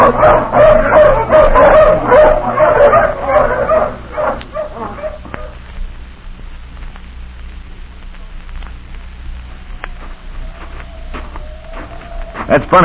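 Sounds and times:
pack of hounds barking and yipping after release from the leash: 0.0 - 5.6, 9.6 - 12.8.

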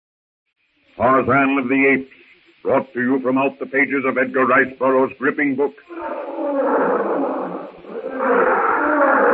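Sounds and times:
speech: 1.0 - 7.2
wild animal roaring in jungle: 5.9 - 9.3.

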